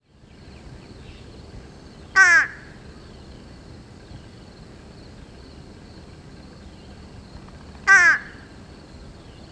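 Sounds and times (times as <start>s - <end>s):
fish crow cawing: 2.2s - 2.8s, 7.9s - 8.5s.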